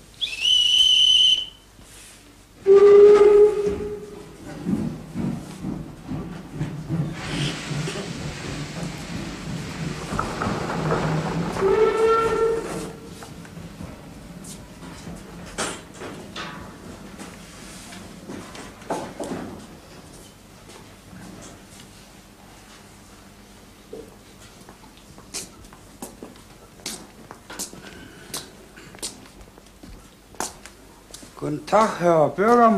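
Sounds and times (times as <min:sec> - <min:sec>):
steam train whistle at departure: 0:00.2 - 0:01.7, 0:02.6 - 0:04.3, 0:11.6 - 0:13.1
steam train clanks: 0:04.4 - 0:14.0
steam train rumbling: 0:06.0 - 0:14.1
steam hissing: 0:07.0 - 0:12.0
speech: 0:31.7 - 0:32.7.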